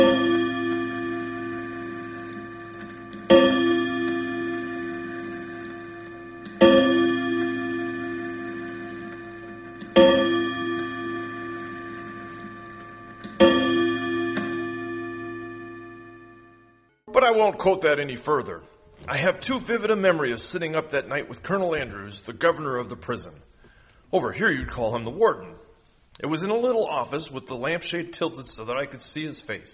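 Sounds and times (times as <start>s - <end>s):
clock striking with metallic ringing tone: 0.0s - 17.3s
speech: 17.3s - 23.5s, 24.1s - 25.5s, 26.2s - 29.7s.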